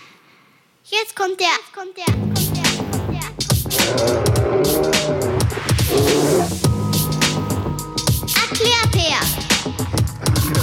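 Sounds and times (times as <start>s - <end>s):
speech: 0.9s - 2.5s, 3.8s - 4.9s
deep rumbling bear growls: 3.6s - 6.7s, 10.1s - 10.6s
loud busy jingle music: 6.6s - 10.2s.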